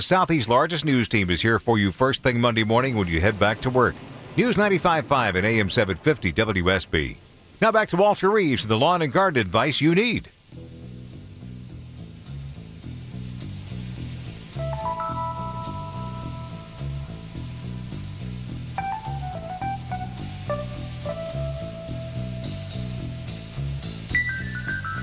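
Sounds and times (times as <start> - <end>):
speech: 0.0 - 10.7
steady rain hiss: 0.0 - 25.0
low bass line: 10.6 - 25.0
soft rhythmic beats: 14.5 - 17.4, 18.8 - 25.0
sustained keyboard melody: 14.6 - 17.5, 18.8 - 23.3, 24.1 - 25.0.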